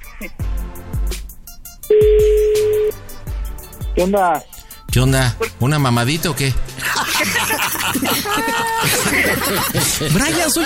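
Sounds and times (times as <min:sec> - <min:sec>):
speech: 0:00.2 - 0:00.5, 0:04.0 - 0:10.6
telephone touch-tone dialing beeps during a prank phone call: 0:01.9 - 0:03.0
laughter: 0:06.8 - 0:10.6.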